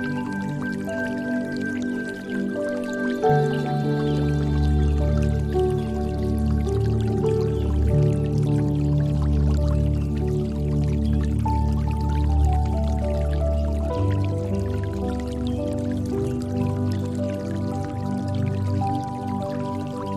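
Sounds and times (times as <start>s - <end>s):
gentle water dripping and trickling: 0.0s - 20.1s
soft piano playing slow sustained chords: 0.0s - 20.1s.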